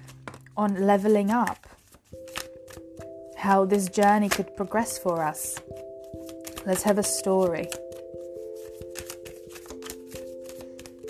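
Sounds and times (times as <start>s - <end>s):
soft steady tonal music bed: 0.0s - 11.0s
tarot cards being shuffled: 0.0s - 11.0s
speech: 0.6s - 1.7s, 3.4s - 5.8s, 6.6s - 7.8s.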